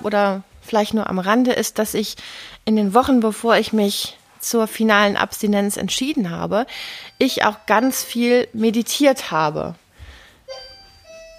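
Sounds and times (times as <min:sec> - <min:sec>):
speech: 0:00.0 - 0:09.8
doorbell two-tone chime: 0:07.0 - 0:08.6, 0:10.5 - 0:11.3.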